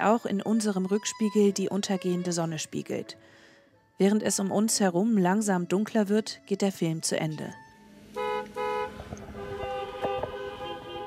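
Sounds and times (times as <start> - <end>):
speech: 0.0 - 3.4, 4.0 - 7.6
cars starting up and driving away after drive-in movie: 7.7 - 11.0
car horn honks: 8.1 - 11.0.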